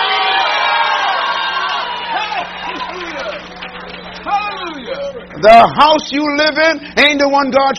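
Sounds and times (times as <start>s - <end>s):
audience shouting hallelujah and cheering: 0.0s - 5.9s
speech: 5.4s - 7.7s.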